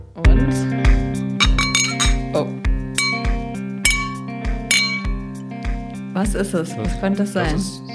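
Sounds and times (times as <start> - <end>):
speech: 0.4 - 0.8, 2.4 - 2.6, 6.3 - 7.8
beer glass clinking against a bottle: 1.4 - 2.3, 3.0 - 5.2.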